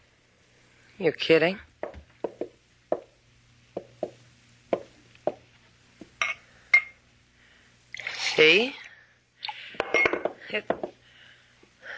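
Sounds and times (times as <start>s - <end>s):
speech: 1.0s - 1.7s
sharp glassy clinks: 6.2s - 7.0s, 9.8s - 10.8s
water poured from a pitcher into a glass: 7.9s - 8.9s.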